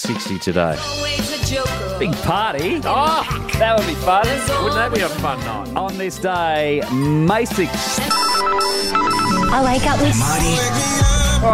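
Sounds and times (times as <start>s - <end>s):
speech: 0.1s - 11.5s
telephone ringing in electronic bursts: 8.1s - 11.0s.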